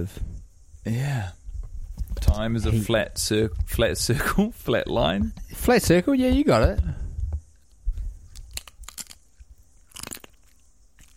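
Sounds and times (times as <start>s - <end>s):
speech: 0.0s - 1.4s, 2.2s - 7.0s
amateur ASMR wet chewing mouth sounds: 7.7s - 11.1s
crisp crunches and bites: 7.9s - 11.1s.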